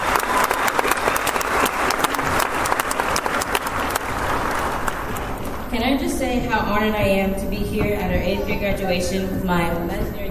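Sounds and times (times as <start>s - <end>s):
audience applause at an eighth-grade graduation ceremony: 0.0s - 5.7s
speech: 6.3s - 10.2s.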